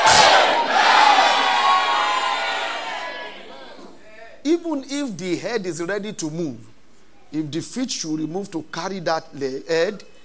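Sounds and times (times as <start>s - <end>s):
church congregation shouting amen together: 0.0s - 3.8s
speech: 4.8s - 10.1s.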